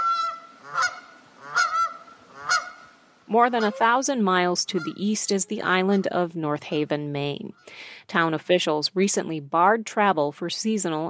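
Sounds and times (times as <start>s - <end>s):
geese honking by the water: 0.0s - 6.3s
speech: 3.3s - 11.0s.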